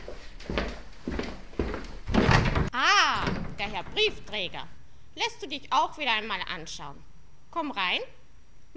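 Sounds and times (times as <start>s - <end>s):
soft footsteps of a grandmother walking to the door: 0.0s - 4.7s
door clunking and creaking open: 1.6s - 4.8s
speech: 3.6s - 8.7s.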